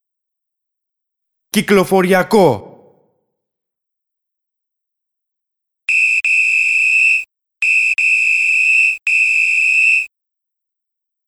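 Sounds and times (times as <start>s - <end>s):
speech: 1.5s - 2.7s
shrill whistle blasts: 5.9s - 10.1s.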